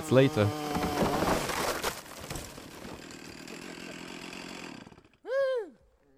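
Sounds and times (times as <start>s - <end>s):
chainsaw sawing through the trunk of a big redwood tree to take a sample: 0.0s - 5.3s.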